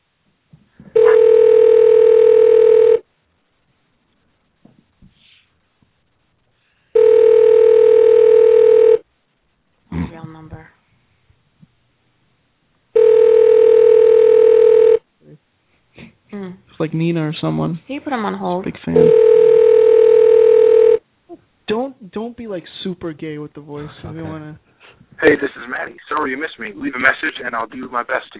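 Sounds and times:
outgoing phone call ringback tones through an internet calling service: 0.9 - 3.0, 7.0 - 9.0, 13.0 - 15.0, 19.0 - 21.0
speech: 16.9 - 19.4, 22.1 - 28.3.

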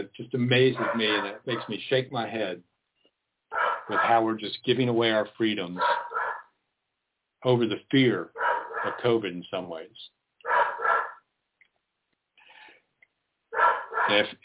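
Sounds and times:
speech: 0.0 - 2.7, 3.9 - 6.0, 7.4 - 10.1, 14.1 - 14.4
dog shut indoors barking at a squirrel: 0.8 - 1.8, 3.5 - 4.3, 5.8 - 6.5, 8.4 - 9.0, 10.4 - 11.2, 13.6 - 14.3.

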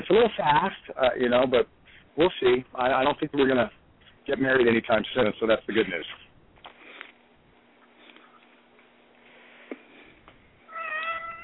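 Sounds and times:
speech: 0.0 - 6.2
cat giving a clear high meow: 10.7 - 11.4.

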